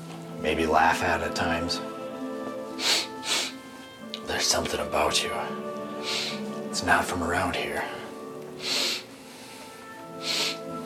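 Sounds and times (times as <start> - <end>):
speech: 0.4 - 1.9, 4.3 - 8.0
creature sniffing: 2.8 - 3.6, 10.2 - 10.7.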